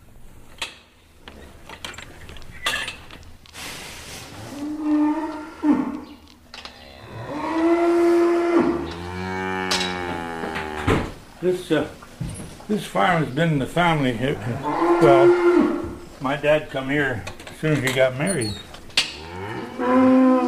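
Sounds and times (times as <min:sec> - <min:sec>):
cattle mooing inside an old family farm barn: 0:04.3 - 0:11.0, 0:14.2 - 0:16.0, 0:19.1 - 0:20.4
speech: 0:11.4 - 0:12.0, 0:12.7 - 0:15.7, 0:16.3 - 0:18.7.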